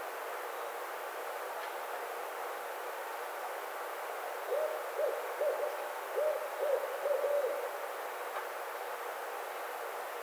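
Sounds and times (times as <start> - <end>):
steady background hiss: 0.0 - 10.2
barred owl hooting: 4.5 - 7.8.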